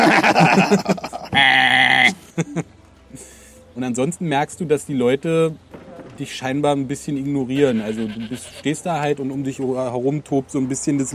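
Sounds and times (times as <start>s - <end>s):
laughter: 0.0s - 2.7s
speech: 0.4s - 1.6s, 3.9s - 11.1s
goats bleating: 7.6s - 8.8s.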